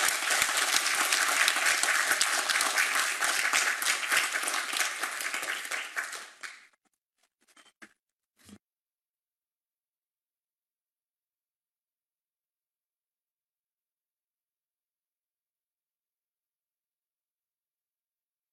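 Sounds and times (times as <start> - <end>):
crowd applauding: 0.0 - 6.8
scattered stray claps: 0.0 - 6.8.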